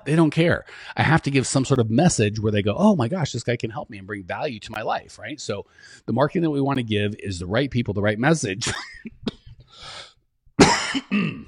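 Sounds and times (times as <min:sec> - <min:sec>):
speech: 0:00.0 - 0:10.0
person with pneumonia coughing: 0:10.6 - 0:11.4.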